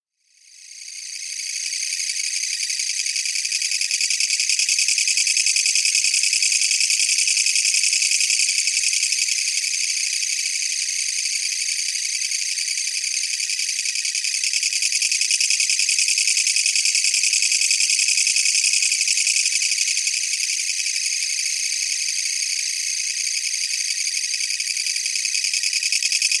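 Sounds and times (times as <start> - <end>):
kutsuwamushi katydid: 0.8 - 26.3.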